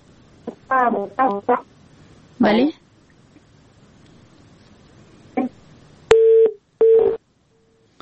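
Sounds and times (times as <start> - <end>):
speech: 0.7 - 1.8, 2.4 - 2.8
telephone busy tone after a dropped call: 6.1 - 7.2.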